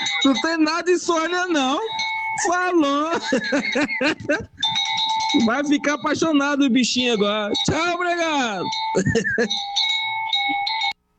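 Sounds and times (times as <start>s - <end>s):
laughter: 0.0s - 0.6s, 2.3s - 6.2s, 8.7s - 9.7s
bell ringing: 0.0s - 11.0s
speech: 0.2s - 4.6s, 5.3s - 10.6s.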